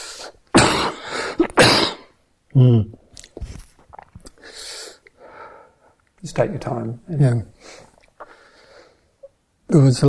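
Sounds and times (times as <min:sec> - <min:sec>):
coughing: 0:00.5 - 0:03.0
speech: 0:02.6 - 0:03.5, 0:06.3 - 0:07.6, 0:09.7 - 0:10.0.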